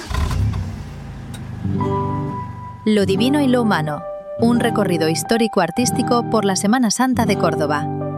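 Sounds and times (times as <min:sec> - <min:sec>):
car engine starting: 0:00.0 - 0:02.9
speech: 0:02.8 - 0:08.0.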